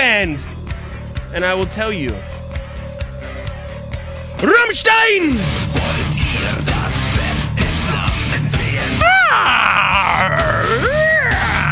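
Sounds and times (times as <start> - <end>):
speech: 0.0 - 0.5, 1.3 - 2.4, 4.4 - 7.0, 9.0 - 10.5
dense heavy music from a German band recording: 0.0 - 11.6
loud drawn-out blood-curdling scream wavering in pitch: 9.0 - 11.6.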